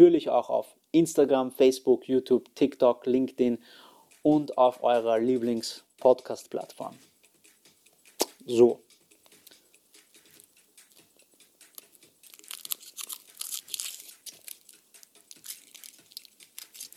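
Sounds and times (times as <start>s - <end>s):
speech: 0.0s - 7.1s, 8.5s - 8.8s
crunchy chewing of chocolate: 10.3s - 16.9s
chocolate wrapper crinkling and tearing: 12.2s - 16.9s.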